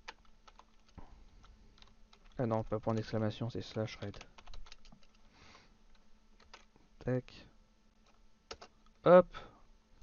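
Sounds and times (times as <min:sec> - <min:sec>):
typing on a computer keyboard: 0:00.0 - 0:05.2, 0:05.9 - 0:06.7, 0:08.0 - 0:08.8
speech: 0:02.4 - 0:04.4, 0:07.1 - 0:07.5, 0:09.0 - 0:09.5.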